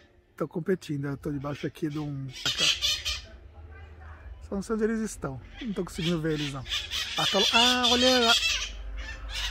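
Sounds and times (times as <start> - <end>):
speech: 0.4 - 2.8, 4.5 - 8.4
screechy parakeet calls: 1.1 - 3.4, 5.3 - 9.4.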